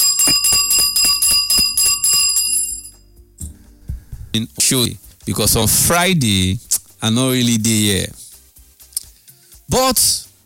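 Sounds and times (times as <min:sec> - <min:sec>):
hand bell being rung: 0:00.0 - 0:03.1
speech: 0:04.4 - 0:08.2, 0:09.7 - 0:10.2.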